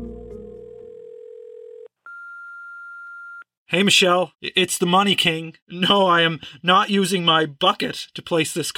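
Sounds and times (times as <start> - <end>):
steady electronic telephone tone: 0.0 - 3.5
speech: 3.7 - 8.7.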